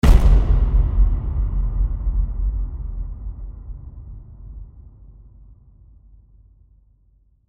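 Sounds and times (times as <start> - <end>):
epic low hit: 0.0 - 5.9.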